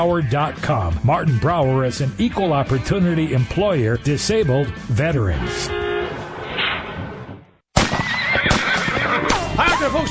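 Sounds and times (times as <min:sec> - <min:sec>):
speech: 0:00.0 - 0:05.8
horse neighing with shrill quavering whinny: 0:08.0 - 0:10.0.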